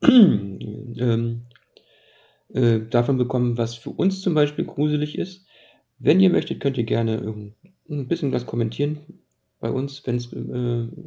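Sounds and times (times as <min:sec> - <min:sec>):
voiced throat clearing from someone with a frog in the throat: 0:00.0 - 0:01.1
speech: 0:00.0 - 0:01.5, 0:02.5 - 0:11.0.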